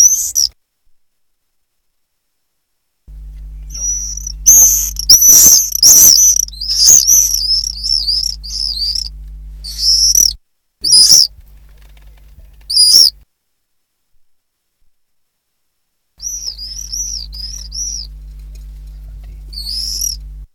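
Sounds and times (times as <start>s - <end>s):
common swifts screaming: 0.0s - 0.5s, 3.1s - 13.2s, 16.2s - 20.5s
low steady hum: 2.8s - 14.3s, 16.2s - 20.5s.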